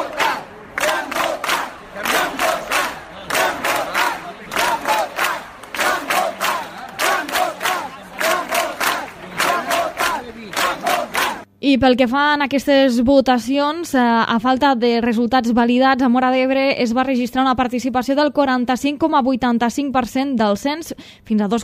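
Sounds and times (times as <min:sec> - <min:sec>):
large crowd in Móra d'Ebre chanting a Catalan protest slogan: 0:00.0 - 0:11.5
speech: 0:11.7 - 0:21.6.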